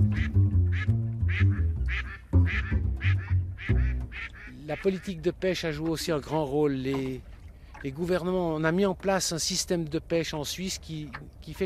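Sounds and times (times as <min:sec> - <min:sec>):
migratory duck quacking: 0:00.0 - 0:05.2
speech: 0:04.7 - 0:11.6.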